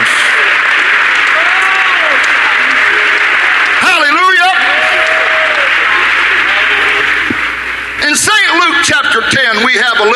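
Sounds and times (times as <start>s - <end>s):
audience applauding: 0.0s - 9.7s.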